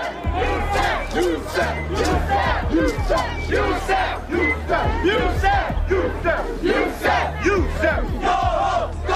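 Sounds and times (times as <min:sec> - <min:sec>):
large angry crowd shouting and yelling at a protest: 0:00.0 - 0:09.1.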